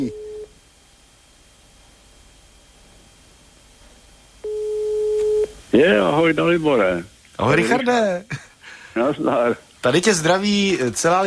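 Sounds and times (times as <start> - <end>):
telephone ringback tone: 0.0 - 0.5, 4.4 - 5.5
speech: 5.7 - 11.2.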